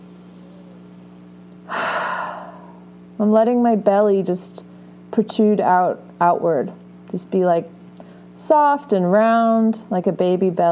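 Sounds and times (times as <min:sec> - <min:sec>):
deep inhalation and exhalation: 0:01.7 - 0:02.8
speech: 0:03.2 - 0:07.8, 0:08.4 - 0:10.7.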